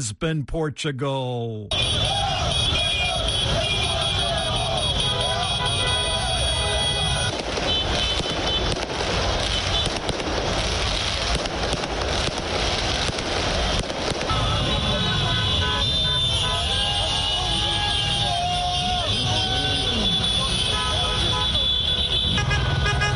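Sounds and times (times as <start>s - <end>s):
speech: 0.0s - 3.6s
crowd noise at a street celebration: 1.1s - 9.5s, 14.3s - 22.9s
car horns honking at a street celebration: 1.7s - 8.7s, 14.3s - 23.1s
bangs like firecrackers: 1.7s - 23.1s
people shouting: 1.8s - 7.3s, 16.3s - 21.6s.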